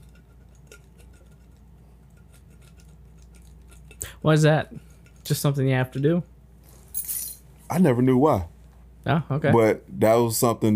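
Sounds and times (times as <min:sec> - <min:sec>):
keys scratching the rose off a can: 0:00.0 - 0:04.0
speech: 0:04.2 - 0:06.3, 0:07.7 - 0:10.7.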